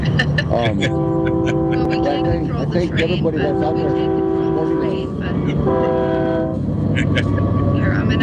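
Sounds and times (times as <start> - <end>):
laughter: 0.0 - 3.2, 5.2 - 6.2, 7.0 - 7.7
train rumbling past: 0.0 - 8.2
speech: 0.5 - 8.2
long loud train horn blasts: 0.8 - 6.6.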